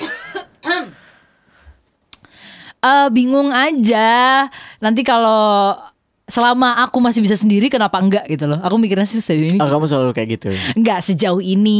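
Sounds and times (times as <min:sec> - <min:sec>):
throaty coughs: 0:00.0 - 0:01.1
speech: 0:02.8 - 0:11.7.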